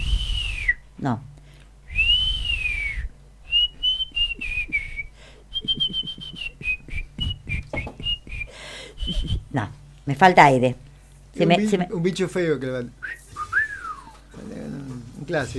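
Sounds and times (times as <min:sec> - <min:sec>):
person whistling: 0:00.0 - 0:00.9, 0:01.9 - 0:09.7, 0:13.0 - 0:14.4
faint noise: 0:00.0 - 0:15.5
speech: 0:01.0 - 0:01.3, 0:09.6 - 0:10.8, 0:11.4 - 0:13.0, 0:15.3 - 0:15.5.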